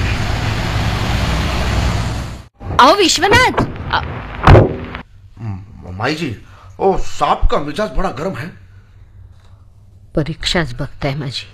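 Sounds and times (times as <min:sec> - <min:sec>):
car engine and road rumble: 0:00.0 - 0:02.5
speech: 0:02.8 - 0:04.7, 0:06.0 - 0:08.6, 0:10.1 - 0:11.5.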